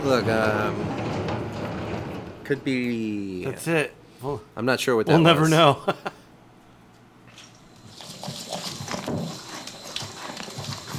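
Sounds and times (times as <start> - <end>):
speech: 0.0 - 1.1, 2.5 - 6.2
laughter: 5.2 - 6.3
horse munching apples: 7.3 - 10.9.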